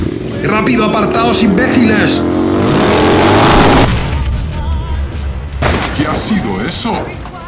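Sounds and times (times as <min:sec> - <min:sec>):
motorcycle engine revving: 0:00.0 - 0:04.2
speech: 0:00.6 - 0:02.4, 0:06.2 - 0:07.3
rumbling crashing burst of noise: 0:03.2 - 0:07.3.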